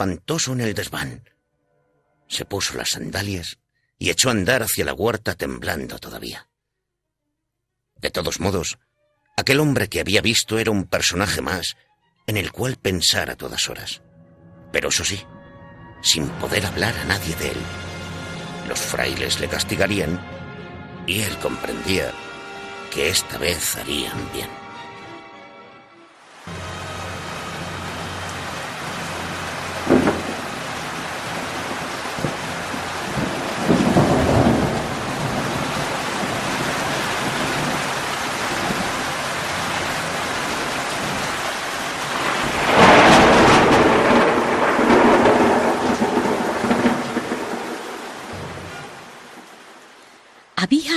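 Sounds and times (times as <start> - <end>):
speech: 0.0 - 1.4, 2.3 - 6.5, 8.0 - 14.1, 14.7 - 15.4, 16.0 - 17.9, 18.6 - 20.4, 21.0 - 22.3, 22.9 - 24.6
steady rain hissing during a thunderstorm: 26.2 - 50.6
deep rolling rumbles of thunder: 27.7 - 49.5
sharp thunder crack: 29.5 - 39.1, 42.0 - 49.1.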